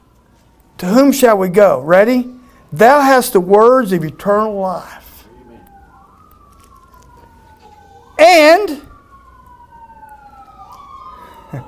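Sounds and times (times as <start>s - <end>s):
wailing emergency siren: 0.0s - 11.6s
speech: 0.8s - 5.0s, 8.2s - 8.9s
man speaking loudly: 0.8s - 5.6s, 8.2s - 8.9s.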